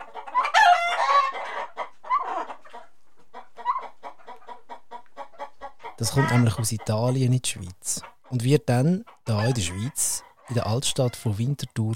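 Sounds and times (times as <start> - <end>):
chicken clucking and squawking: 0.0 - 11.9
speech: 6.0 - 11.9.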